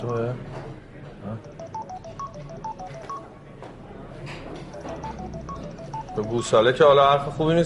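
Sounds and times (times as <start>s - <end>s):
speech: 0.0s - 1.5s, 6.2s - 7.6s
mobile phone game electronic melodic beeps: 1.4s - 3.3s, 4.7s - 6.7s.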